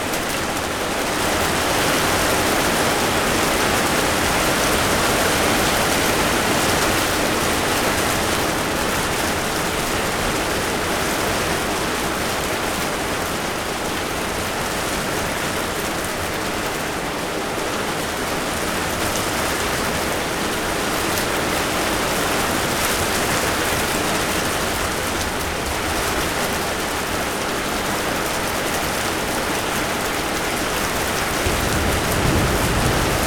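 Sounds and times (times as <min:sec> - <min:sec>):
heavy rain: 0:00.0 - 0:33.2.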